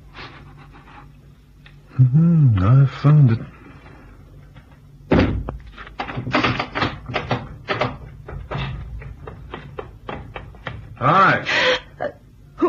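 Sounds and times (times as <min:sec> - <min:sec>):
speech: 0:02.0 - 0:03.6
heavy wooden trap door in a cabin thudding open: 0:05.1 - 0:07.9
scraping knocks and creaky clatters of trap door settling: 0:05.2 - 0:11.0.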